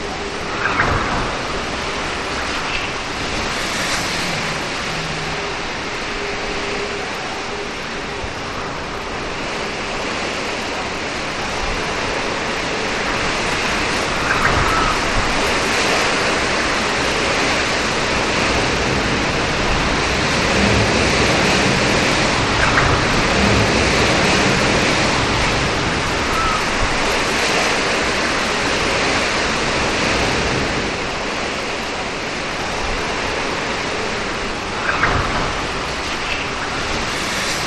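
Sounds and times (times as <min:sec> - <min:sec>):
rain: 0:00.0 - 0:37.6
birds whistling: 0:00.2 - 0:06.4, 0:14.0 - 0:16.2, 0:26.1 - 0:26.8.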